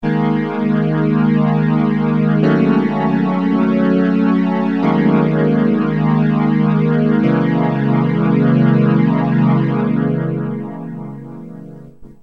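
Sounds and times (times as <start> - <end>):
synthesizer ensemble sound: 0.0 - 12.2.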